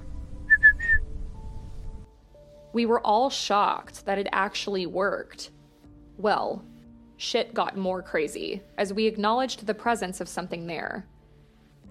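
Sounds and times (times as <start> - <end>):
short clear whistled notes: 0.4 - 1.1
speech: 2.8 - 5.6, 6.2 - 11.1.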